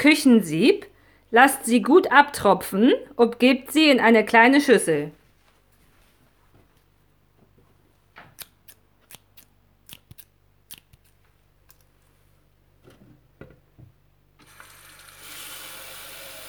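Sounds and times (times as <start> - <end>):
speech: 0.0 - 5.2
scissors snipping through garden cress: 8.3 - 11.9.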